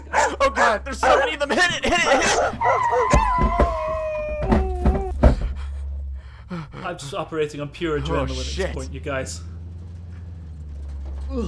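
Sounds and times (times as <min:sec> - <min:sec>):
several dogs howling together: 0:00.0 - 0:01.4, 0:02.0 - 0:05.2
laughter: 0:00.0 - 0:02.8, 0:04.6 - 0:08.9
dogs barking sharply: 0:00.0 - 0:04.3
low rumbling background: 0:00.0 - 0:11.4
speech: 0:00.4 - 0:03.6, 0:06.9 - 0:09.5.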